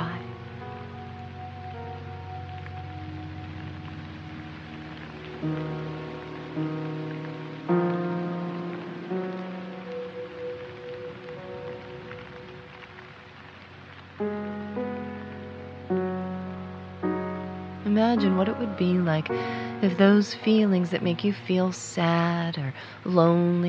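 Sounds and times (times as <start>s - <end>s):
gentle sustained piano-like chords: 0.0s - 23.6s
steady rain falling outside: 0.0s - 23.6s
speech: 5.4s - 5.8s, 18.2s - 23.6s.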